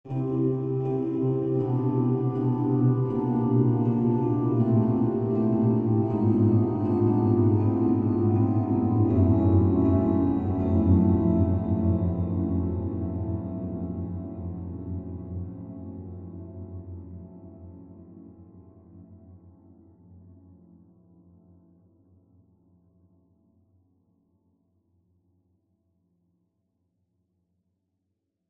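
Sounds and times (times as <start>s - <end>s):
large hall ambience: 0.1s - 19.6s.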